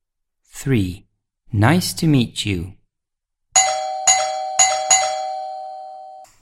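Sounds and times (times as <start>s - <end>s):
speech: 0.6s - 2.8s
doorbell ringing: 3.6s - 6.3s.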